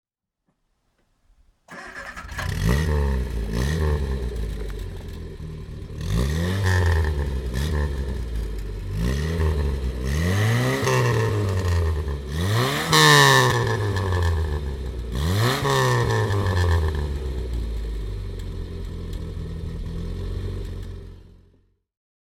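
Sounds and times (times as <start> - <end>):
Triumph Herald 13-60 engine starting: 1.7 - 21.7.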